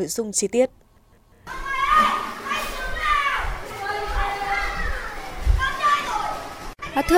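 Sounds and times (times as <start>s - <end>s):
speech: 0.0s - 0.8s, 7.0s - 7.1s
children chattering and squealing at an indoor play area: 1.5s - 7.1s.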